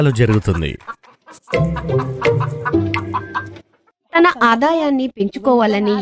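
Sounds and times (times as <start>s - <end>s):
speech: 0.0s - 3.3s, 4.2s - 5.9s
home-kept flock of chickens clucking: 0.0s - 3.9s.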